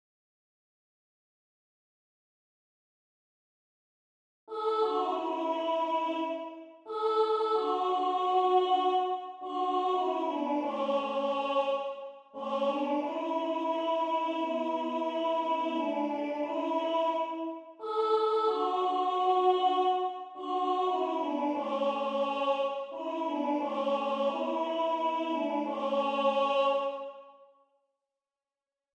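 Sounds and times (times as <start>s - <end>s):
treble soprano singing in an audition excerpt: 4.5s - 27.4s.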